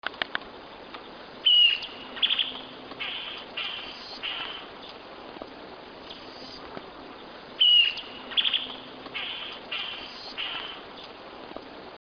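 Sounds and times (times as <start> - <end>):
Solitary Cacique Cacicus solitarius singing: 0.8 - 5.0, 6.0 - 11.2.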